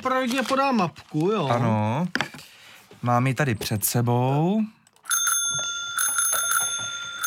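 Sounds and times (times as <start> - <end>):
speech: 0.0 - 2.3, 3.0 - 4.8
bicycle bell ringing: 5.0 - 7.2.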